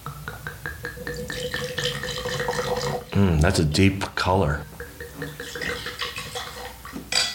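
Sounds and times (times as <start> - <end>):
Bordeaux blend wine pouring into a glass: 0.9 - 3.4, 4.8 - 6.9
speech: 3.2 - 4.8.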